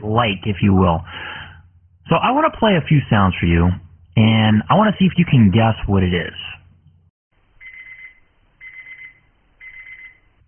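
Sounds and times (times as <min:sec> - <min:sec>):
speech: 0:00.0 - 0:01.1, 0:02.1 - 0:06.5
digital alarm clock beeping: 0:07.6 - 0:10.2.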